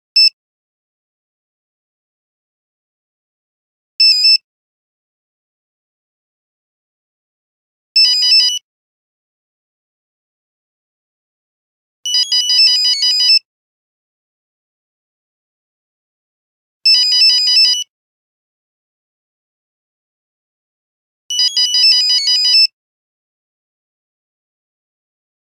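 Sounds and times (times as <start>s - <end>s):
Nokia phone buzzer: 8.0s - 8.6s, 12.1s - 13.5s, 16.9s - 17.9s, 21.3s - 22.7s.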